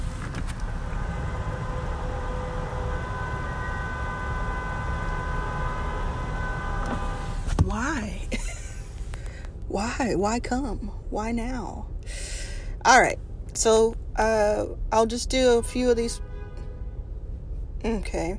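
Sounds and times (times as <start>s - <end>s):
car horns honking in traffic: 0.0s - 8.0s, 15.6s - 17.1s
heavy traffic rumble: 0.0s - 18.3s
speech: 9.8s - 16.3s, 17.8s - 18.3s.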